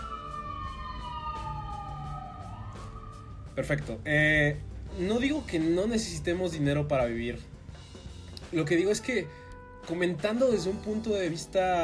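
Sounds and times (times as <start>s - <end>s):
police car siren wailing as the vehicle passes: 0.0s - 3.8s
speech: 3.6s - 7.5s, 8.5s - 11.8s.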